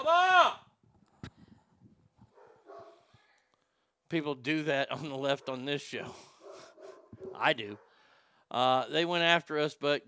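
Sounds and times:
several dogs barking and yipping: 2.3s - 3.1s, 5.2s - 8.1s
speech: 4.1s - 6.3s, 7.4s - 7.9s, 8.5s - 10.0s.

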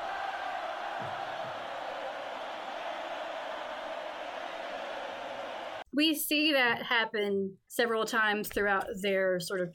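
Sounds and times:
large crowd chanting in unison as a band comes on stage: 0.0s - 5.8s
speech: 6.0s - 9.7s.

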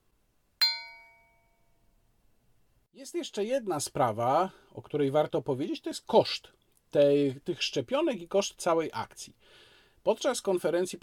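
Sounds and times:
small bell ringing: 0.6s - 1.8s
speech: 3.0s - 11.0s.

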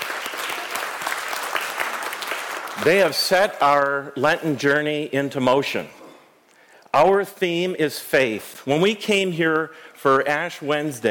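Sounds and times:
audience applauding for a group of ladies: 0.0s - 3.2s
speech: 2.8s - 6.0s, 6.9s - 11.0s.

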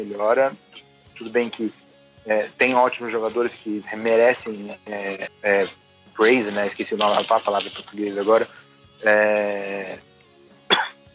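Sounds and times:
speech: 0.0s - 10.1s
drawn-out voiced throat-clearing rasp: 10.7s - 11.0s
sharp cough: 10.7s - 11.0s.

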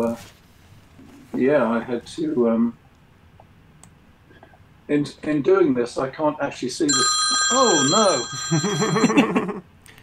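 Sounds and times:
speech: 0.0s - 0.4s, 1.3s - 2.8s, 4.9s - 9.7s
phone ringing with warbling electronic ringtone for an incoming call: 6.9s - 9.3s
laughter: 8.4s - 9.6s.

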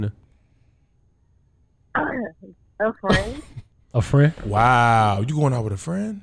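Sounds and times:
speech: 0.0s - 0.2s, 2.0s - 6.2s
woman coughing: 3.0s - 3.7s.

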